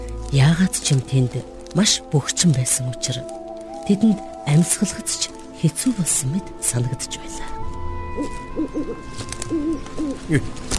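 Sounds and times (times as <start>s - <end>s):
speech: 0.3s - 7.6s, 8.2s - 10.7s
owl hooting: 8.2s - 10.3s.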